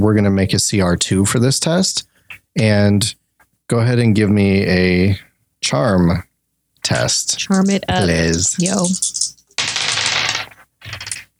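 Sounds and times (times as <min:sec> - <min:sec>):
speech: 0:00.0 - 0:09.2
several dice clattering across a hard tabletop: 0:06.9 - 0:11.3.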